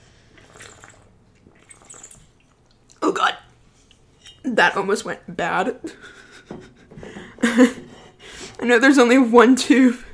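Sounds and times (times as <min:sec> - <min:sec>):
water sloshing: 0:00.0 - 0:04.4
person drinking water, gulping and swallowing: 0:00.3 - 0:03.1
speech: 0:04.6 - 0:06.2, 0:07.4 - 0:07.9, 0:08.6 - 0:10.1.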